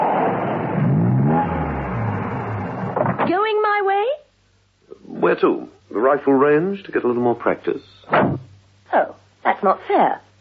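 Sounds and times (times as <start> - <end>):
car engine revving as the car comes round the corner of a lane: 0.0 - 3.2
speech: 5.2 - 10.3.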